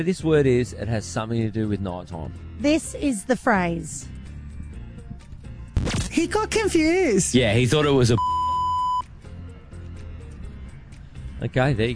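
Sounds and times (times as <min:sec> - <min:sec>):
speech: 0:00.0 - 0:04.2, 0:06.2 - 0:08.3, 0:11.4 - 0:11.9
censor bleep covering a spoken word: 0:08.2 - 0:09.0.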